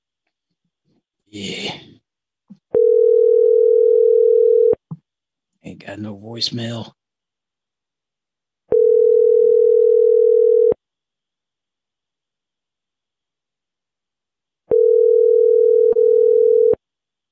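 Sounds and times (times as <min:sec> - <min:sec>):
speech: 0:01.0 - 0:01.9, 0:06.0 - 0:07.0
telephone tone after a call is hung up: 0:02.8 - 0:04.8, 0:08.7 - 0:10.8, 0:14.7 - 0:16.8.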